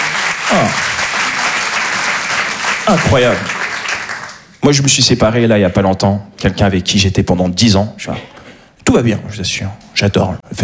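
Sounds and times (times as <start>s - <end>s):
audience applause for a couple: 0.0s - 4.6s
speech: 0.5s - 0.8s, 2.9s - 3.5s, 4.6s - 10.6s.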